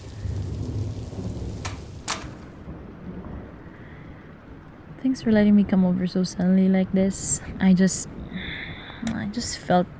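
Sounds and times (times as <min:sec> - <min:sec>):
sharp thunder cracks: 0:00.0 - 0:04.4
deep rolling thunder rumble: 0:00.0 - 0:05.5
heavy rain pouring: 0:00.0 - 0:09.9
speech: 0:05.0 - 0:08.2, 0:09.3 - 0:09.9.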